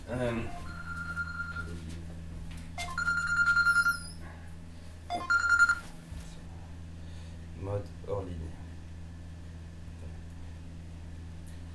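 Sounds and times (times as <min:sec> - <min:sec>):
speech: 0:00.1 - 0:00.7
mobile phone ringtone with bright electronic tones: 0:00.4 - 0:01.8, 0:02.8 - 0:04.2, 0:05.1 - 0:05.9.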